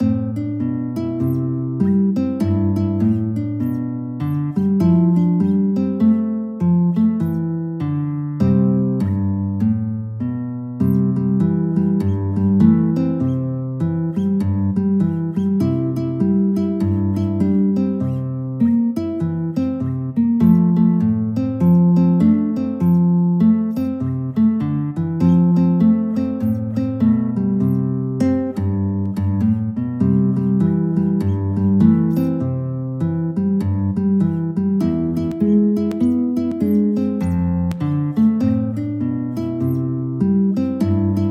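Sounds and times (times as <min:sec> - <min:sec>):
guitar playing a gospel song: 0:00.0 - 0:41.2.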